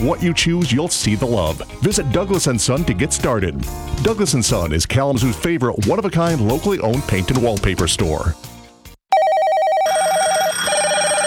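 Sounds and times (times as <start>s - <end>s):
speech: 0.0s - 8.5s
loud electronic phone ringer trilling: 9.1s - 11.2s.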